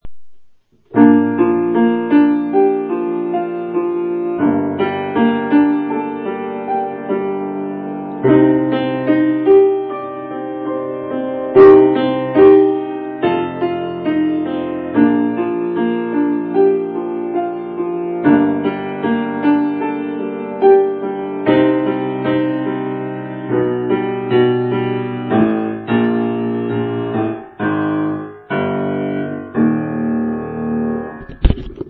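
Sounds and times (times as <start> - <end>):
Steinway piano: 0.0 - 31.8.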